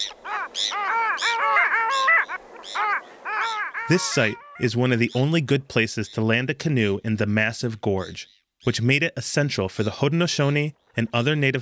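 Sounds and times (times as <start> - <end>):
long-tailed ducks calling on the Niagara River: 0.0 - 5.7
Bonaparte's gulls squeaking on the Niagara River: 0.0 - 6.4
speech: 3.9 - 11.6.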